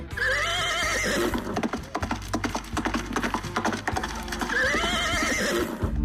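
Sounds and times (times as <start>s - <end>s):
horse neighing: 0.1s - 2.1s, 3.1s - 5.9s
quick clip-clop of horse hooves: 0.4s - 5.9s.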